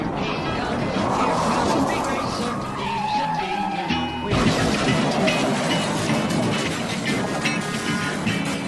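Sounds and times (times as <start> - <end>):
loud dense crowd-like din: 0.0 - 8.6
race car tire screech in a skid: 0.0 - 8.6
roaring race car engines: 0.0 - 8.6
race car crash and clattering impacts: 4.3 - 8.6.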